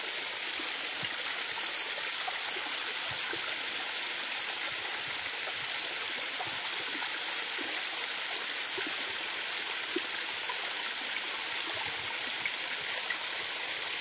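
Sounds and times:
spring water running in a steady rush: 0.0s - 13.9s.

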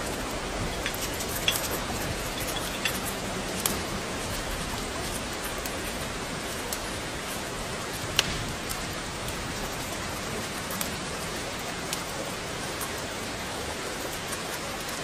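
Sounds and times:
fire crackling and popping: 0.0s - 15.0s
steady rain: 0.0s - 15.0s.

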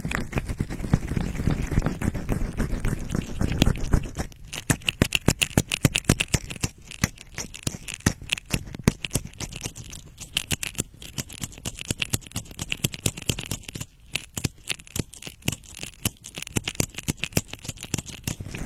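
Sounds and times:
deep rubbing of ear massage: 0.0s - 9.7s
crisp crackling and tapping of ear massage: 0.0s - 18.6s.

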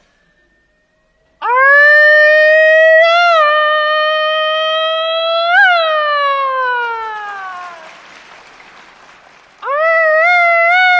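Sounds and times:
voice imitating a police siren: 1.4s - 7.8s, 9.6s - 10.9s.

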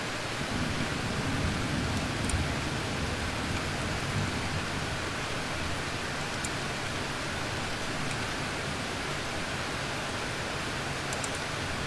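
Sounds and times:
cool autumn rain hissing: 0.2s - 11.8s.

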